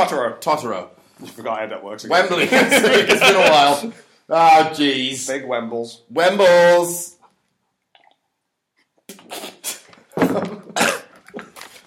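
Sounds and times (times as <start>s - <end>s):
speech: 0.0s - 7.2s
laughter: 2.2s - 4.0s
person eating yogurt coughing: 10.6s - 11.2s.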